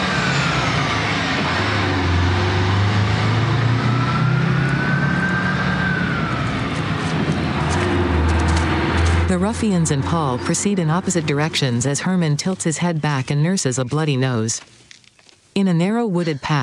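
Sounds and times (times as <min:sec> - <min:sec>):
diesel bus pulling away from a street: 0:00.0 - 0:12.4
speech: 0:09.4 - 0:14.8, 0:15.6 - 0:16.6.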